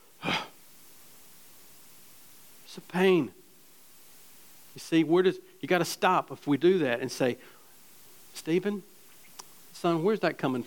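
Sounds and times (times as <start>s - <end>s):
sharp breathy snort through the nose: 0.2s - 0.6s
speech: 2.8s - 3.4s, 4.8s - 7.6s, 8.4s - 8.9s, 9.8s - 10.6s.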